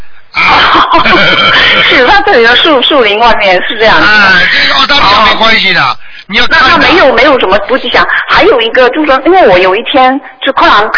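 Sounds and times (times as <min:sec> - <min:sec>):
voice imitating crow cawing: 0:00.4 - 0:02.1
laughter: 0:00.4 - 0:02.2, 0:03.3 - 0:05.5
speech: 0:01.3 - 0:10.9.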